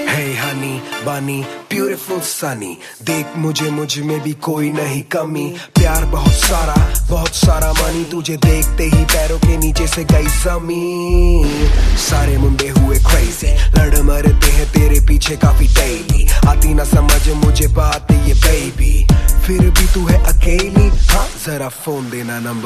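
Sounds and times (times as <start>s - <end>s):
remix ringtone music: 0.0s - 22.1s.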